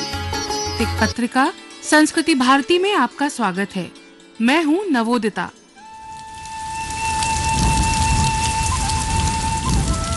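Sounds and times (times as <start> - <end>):
speech: 0.8 - 5.6
steady rain pouring: 5.8 - 10.1.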